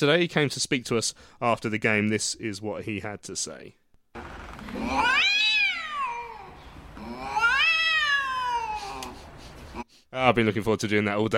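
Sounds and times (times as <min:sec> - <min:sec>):
speech: 0:00.0 - 0:03.8, 0:10.1 - 0:11.3
cat meowing: 0:04.6 - 0:09.2.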